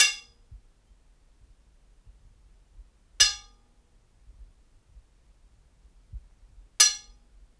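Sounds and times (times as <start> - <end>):
hits on iron bars in a prison courtyard: 0.0 - 0.3, 3.2 - 3.5, 6.8 - 7.2.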